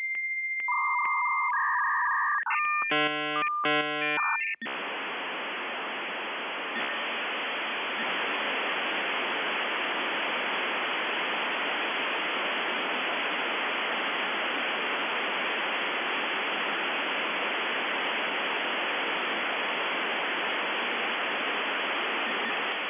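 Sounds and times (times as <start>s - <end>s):
3Com Promessage modem 28800 31200: 0.2s - 22.8s.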